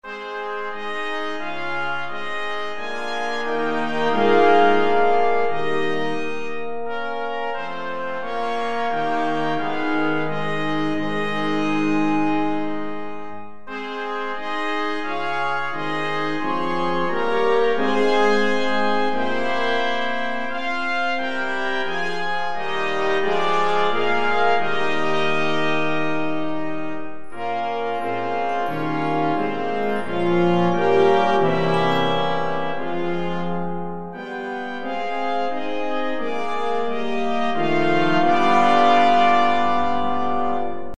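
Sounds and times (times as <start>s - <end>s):
brass band playing: 0.0s - 40.9s.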